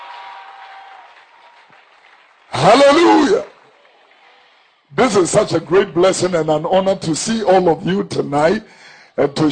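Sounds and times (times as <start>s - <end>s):
crowd clapping at a Christian worship gathering: 0.0s - 5.2s
speech: 2.6s - 3.5s, 5.0s - 9.5s.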